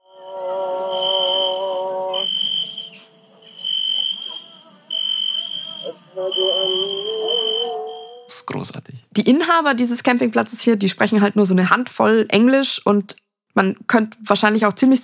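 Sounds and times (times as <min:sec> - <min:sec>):
crickets chirping at night at a campsite: 0:00.0 - 0:08.3
muezzin's wavering voice chanting faintly: 0:00.0 - 0:08.4
speech: 0:08.5 - 0:15.0.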